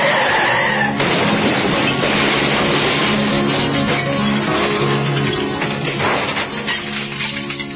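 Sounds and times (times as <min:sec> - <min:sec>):
car tires skidding in a crash: 0:00.0 - 0:01.0
car crash rumbling and clattering: 0:00.9 - 0:07.7.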